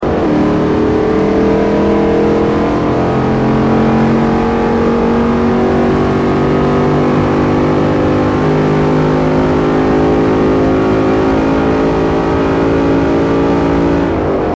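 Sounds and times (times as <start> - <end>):
Charger SRT8 car: 0.0 - 14.5.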